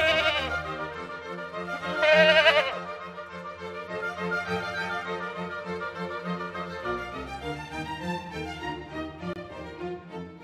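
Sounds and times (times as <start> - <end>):
goat bleating: 0.0 - 0.6, 1.9 - 2.9
soft instrumental music: 0.0 - 10.4.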